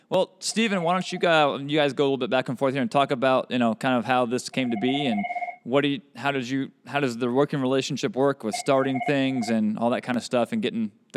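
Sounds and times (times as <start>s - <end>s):
speech: 0.1s - 11.1s
office telephone ringing with a short electronic trill: 4.6s - 5.6s, 8.5s - 9.5s.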